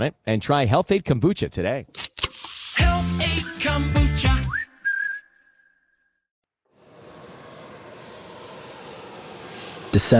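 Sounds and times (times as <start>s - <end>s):
speech: 0.0s - 2.0s, 10.0s - 10.1s
high whistling tone: 3.2s - 6.3s
private jet engines roaring as the plane lands: 6.8s - 10.1s.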